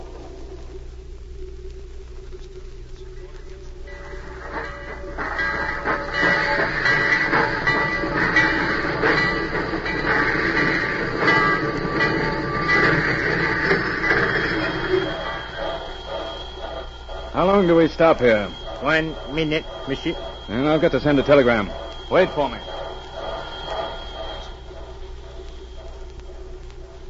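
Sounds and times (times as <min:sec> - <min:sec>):
train rumbling on rails: 0:03.5 - 0:27.0
faint metallic squeals of train: 0:03.8 - 0:27.0
speech: 0:17.6 - 0:22.7.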